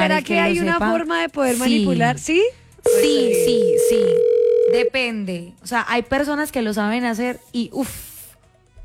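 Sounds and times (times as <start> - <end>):
speech: 0.0 - 8.1
steady electronic telephone beep on an unanswered call: 2.9 - 4.4.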